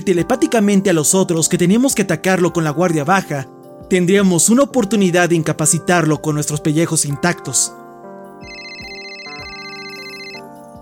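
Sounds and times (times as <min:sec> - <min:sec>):
speech: 0:00.0 - 0:07.8
telephone ringing with a bright electronic tone: 0:08.4 - 0:10.5.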